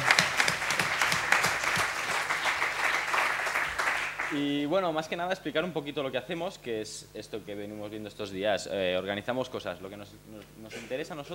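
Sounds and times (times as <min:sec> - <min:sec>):
crowd clapping for an event organizer during a series of talks: 0:00.0 - 0:04.4
speech: 0:04.3 - 0:11.3.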